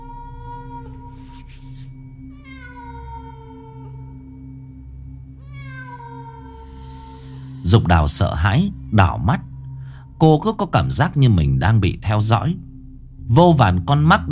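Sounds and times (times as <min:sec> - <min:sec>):
cat yowling mournfully at night in a small village: 0:00.0 - 0:01.4, 0:02.3 - 0:04.3, 0:05.4 - 0:07.6
steady low drone: 0:00.0 - 0:14.2
speech: 0:07.6 - 0:09.5, 0:10.2 - 0:12.7, 0:13.3 - 0:14.2.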